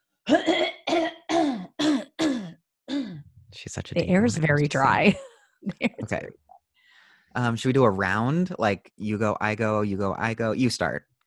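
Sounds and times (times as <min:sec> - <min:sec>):
person clearing throat: 0:00.3 - 0:03.3
speech: 0:03.6 - 0:06.4, 0:07.4 - 0:11.1.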